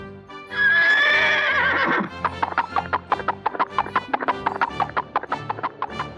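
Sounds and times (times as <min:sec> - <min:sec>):
horse whinny: 0:00.5 - 0:04.7
clip-clop hoofbeats trotting: 0:00.5 - 0:06.1.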